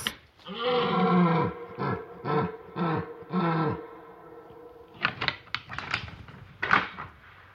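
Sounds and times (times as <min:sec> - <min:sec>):
deer stags bellowing during the rut: 0:00.4 - 0:05.2.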